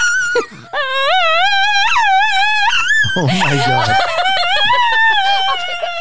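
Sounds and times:
dog howling in sing-song tones: 0:00.0 - 0:06.0
speech: 0:00.4 - 0:01.0, 0:03.2 - 0:04.2
laughter: 0:03.0 - 0:06.0
person exclaiming: 0:03.1 - 0:04.2.

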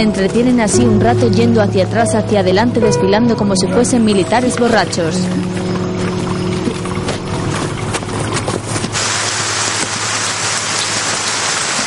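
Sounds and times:
speech: 0:00.0 - 0:05.8
rain falling: 0:04.3 - 0:11.8.

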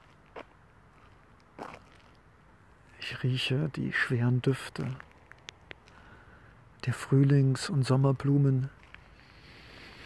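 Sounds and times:
footsteps crunching on gravel under linden, plane and oak trees at night: 0:00.0 - 0:02.3, 0:04.7 - 0:06.1, 0:08.7 - 0:09.6
speech: 0:03.1 - 0:05.1, 0:06.8 - 0:08.8.

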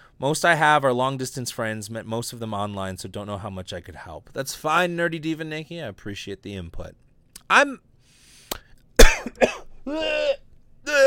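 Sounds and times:
speech: 0:00.2 - 0:07.9, 0:09.3 - 0:11.0
person clearing throat: 0:09.0 - 0:11.0
sharp coughs: 0:09.0 - 0:11.0.

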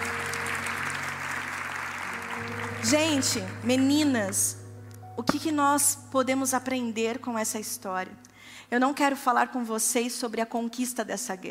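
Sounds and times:
audience applause in praise of the Lord: 0:00.0 - 0:04.0
speech: 0:02.4 - 0:04.6, 0:05.2 - 0:11.4.

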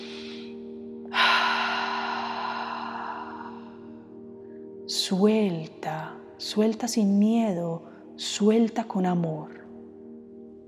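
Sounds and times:
deep breath in and out during guided meditation: 0:00.0 - 0:04.8
speech: 0:04.9 - 0:09.6.

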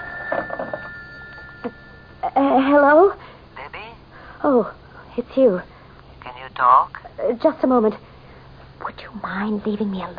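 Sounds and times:
old-style telephone bell ringing: 0:00.0 - 0:02.2
faint steady hum: 0:00.0 - 0:10.1
speech: 0:02.4 - 0:03.2, 0:04.4 - 0:05.7, 0:06.5 - 0:08.1, 0:09.0 - 0:10.1.

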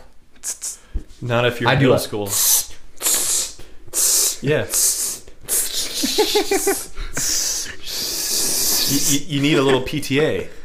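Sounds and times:
voice imitating a cologne spray hiss: 0:00.4 - 0:00.9, 0:02.3 - 0:09.3
speech: 0:01.2 - 0:02.6, 0:04.4 - 0:05.0, 0:06.0 - 0:07.4, 0:08.9 - 0:10.6
laughter: 0:05.8 - 0:07.3.

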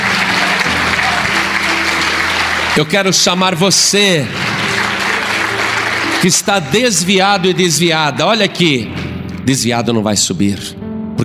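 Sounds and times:
audience applauding in a large room: 0:00.0 - 0:08.2
speech: 0:02.8 - 0:04.7, 0:06.2 - 0:11.2.

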